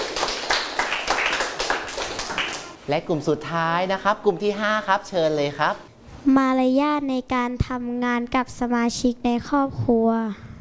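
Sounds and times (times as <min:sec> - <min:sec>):
group applauding a presenter after a group presentation: 0:00.0 - 0:02.8
speech: 0:02.9 - 0:10.4.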